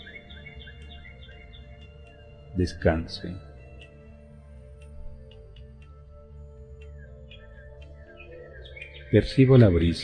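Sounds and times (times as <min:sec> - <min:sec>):
birds chirping among tree branches: 0:00.0 - 0:10.0
speech: 0:02.6 - 0:03.5, 0:09.1 - 0:10.0.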